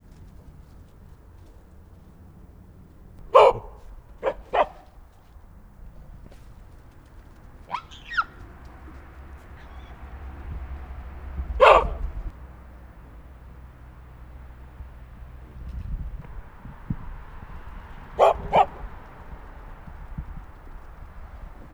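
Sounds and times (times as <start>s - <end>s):
hamadryas baboon barking in a zoo: 3.2s - 5.0s, 7.6s - 12.3s, 17.9s - 19.4s.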